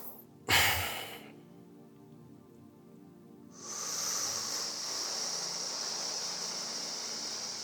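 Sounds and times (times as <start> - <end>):
loud deliberate breathing during monastic breath-regulation practice: 0.0 - 1.4, 3.6 - 7.5.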